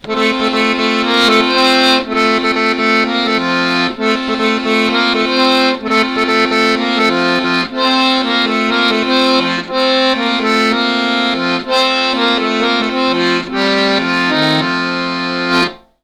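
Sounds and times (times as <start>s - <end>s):
accordion outro music: 0.0s - 16.0s.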